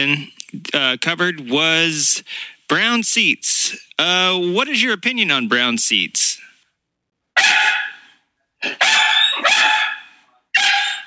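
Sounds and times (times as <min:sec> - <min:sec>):
speech: 0:00.0 - 0:06.4
dog barking: 0:07.4 - 0:11.0.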